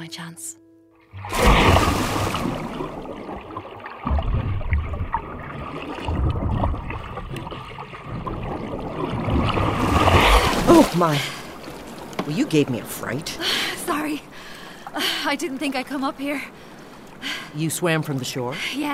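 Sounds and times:
speech: 0:00.0 - 0:03.5, 0:10.8 - 0:11.4, 0:12.3 - 0:14.4, 0:15.0 - 0:16.6, 0:17.2 - 0:18.9
low rumbling: 0:01.2 - 0:11.9
water churning and sloshing around a small rowed boat on a lake: 0:01.2 - 0:18.9.

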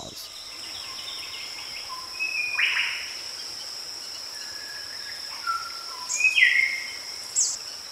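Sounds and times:
rainforest insect drone: 0:00.0 - 0:07.9
faint rainforest bird whistles and chirps: 0:00.3 - 0:03.1, 0:04.3 - 0:07.6.

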